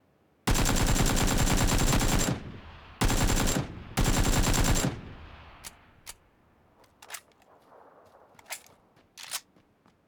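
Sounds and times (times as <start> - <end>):
AKM assault rifle firing full auto: 0.5 - 6.1.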